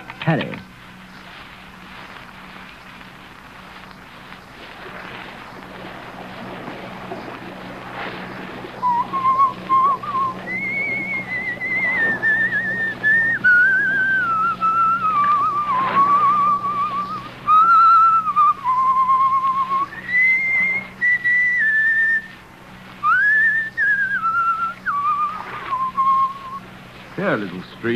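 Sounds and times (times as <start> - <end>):
low steady hum: 0.0 - 27.9
speech: 0.2 - 0.7, 27.4 - 27.9
person whistling a slow song melody: 8.8 - 22.3, 23.0 - 26.6.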